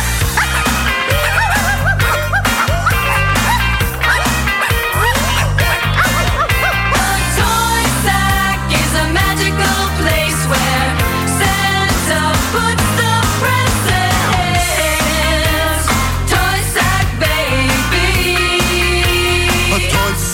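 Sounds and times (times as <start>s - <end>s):
Christmas novelty song with steady bass backing: 0.0s - 20.3s
laughter: 0.1s - 9.9s
puppies barking and yipping: 0.4s - 7.4s.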